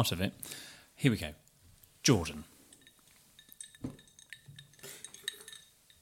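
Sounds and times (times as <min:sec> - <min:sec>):
speech: 0:00.0 - 0:01.4, 0:02.0 - 0:02.5
faint room noise: 0:00.0 - 0:06.0
glasses clinking in a toast: 0:02.6 - 0:06.0.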